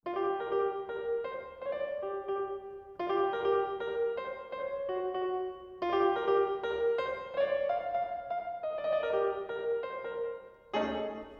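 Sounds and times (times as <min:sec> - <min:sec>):
jazz music with reverb: 0:00.1 - 0:11.3.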